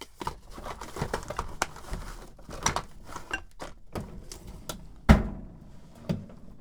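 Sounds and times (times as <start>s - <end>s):
rummaging through a toolbox: 0.0s - 6.5s.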